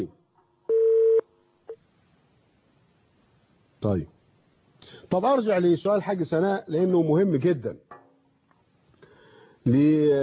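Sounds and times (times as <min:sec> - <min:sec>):
steady electronic tone of a telephone call connecting on a phone-in line: 0:00.7 - 0:01.2
speech: 0:03.8 - 0:04.2, 0:05.1 - 0:07.9, 0:09.6 - 0:10.2.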